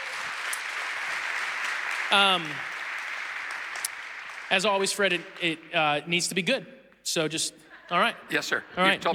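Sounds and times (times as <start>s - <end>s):
crowd applause: 0.0s - 6.3s
speech: 2.1s - 2.7s, 4.5s - 9.1s.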